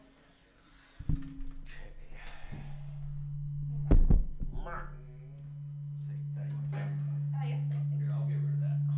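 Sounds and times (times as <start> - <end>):
steady low electrical hum from an overly hot microphone: 0.0 - 8.9
heavy thumps and knocks of microphone handling: 1.0 - 5.7.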